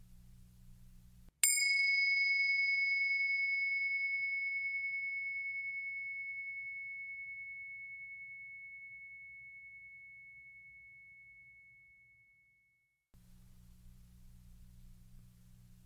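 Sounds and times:
faint low hum: 0.0 - 1.4, 13.2 - 15.8
meditation bell struck: 1.4 - 12.4.

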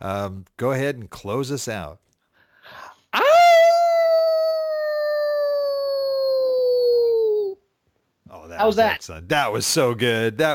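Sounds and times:
speech: 0.0 - 2.1, 8.5 - 10.5
person breathing: 2.3 - 3.1
person imitating a hound dog howl: 3.2 - 7.6.

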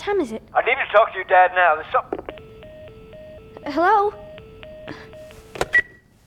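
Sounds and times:
speech: 0.0 - 2.2, 3.6 - 4.2
telephone keypad dialing tones: 2.1 - 6.0.

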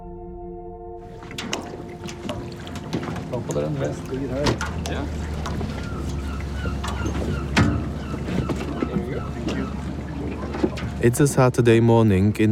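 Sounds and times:
motorboat engine approaching a dock opposite an island: 0.9 - 12.5
water splashes: 1.0 - 12.5
knocks: 1.1 - 11.0
wind buffeting the microphone: 1.1 - 11.5
speech: 3.4 - 5.8, 11.0 - 12.5.

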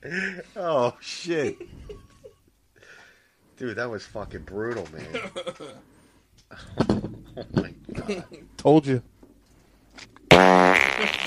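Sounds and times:
speech: 0.0 - 1.7, 3.6 - 6.0, 7.4 - 9.1
wet fart: 10.3 - 11.2.

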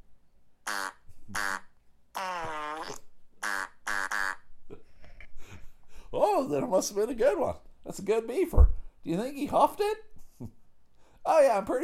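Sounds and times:
loud farting: 0.6 - 4.4
speech: 6.4 - 10.6, 11.3 - 11.8.

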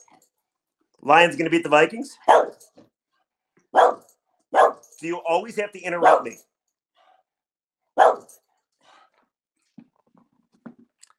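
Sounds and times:
speech: 1.0 - 2.6, 5.0 - 6.5
dog barking: 2.2 - 2.6, 3.7 - 4.9, 6.0 - 6.4, 8.0 - 8.4.

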